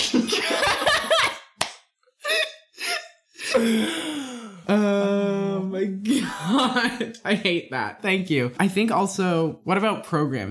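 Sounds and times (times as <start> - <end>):
laughter: 0.0 - 1.5, 6.1 - 7.5
sharp slap on skin: 1.6 - 1.9
speech: 3.6 - 4.0, 4.7 - 5.2, 5.8 - 10.4.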